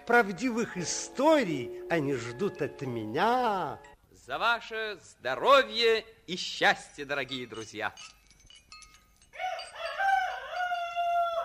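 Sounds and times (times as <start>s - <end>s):
speech: 0.1s - 8.2s
rooster crowing: 9.4s - 11.4s.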